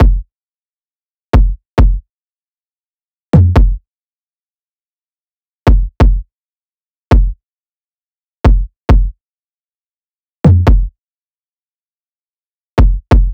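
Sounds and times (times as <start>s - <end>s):
kick drum loop: 0.0s - 0.3s, 1.4s - 2.0s, 3.4s - 3.8s, 5.7s - 6.2s, 7.1s - 7.4s, 8.5s - 9.2s, 10.5s - 10.9s, 12.8s - 13.3s.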